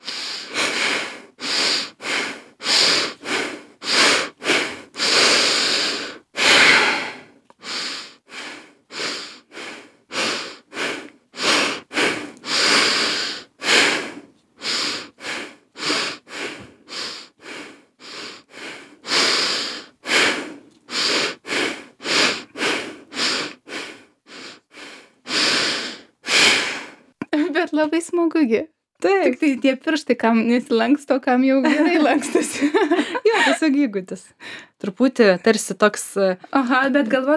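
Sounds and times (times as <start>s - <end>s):
breathing in and out through the nose during a guided breathing exercise: 0.0s - 27.2s, 34.3s - 34.8s
speech: 27.8s - 37.3s
laughter: 31.6s - 33.8s.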